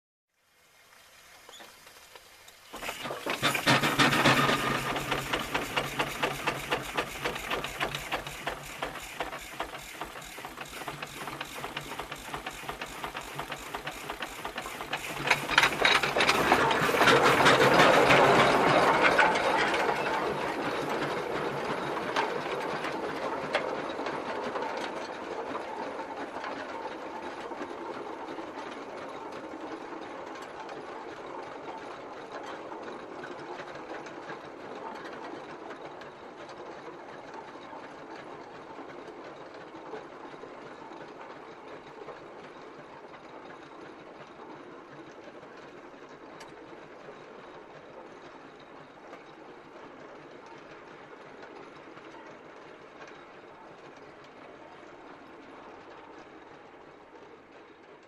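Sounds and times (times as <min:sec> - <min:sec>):
steam tractor starting and driving away: 0:02.6 - 0:24.9.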